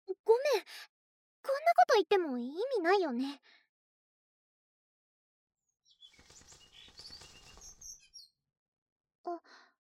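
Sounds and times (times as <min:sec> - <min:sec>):
speech: 0:00.3 - 0:03.6, 0:09.3 - 0:09.6
bird chirping: 0:05.8 - 0:08.4
bird wings fluttering: 0:06.0 - 0:08.3.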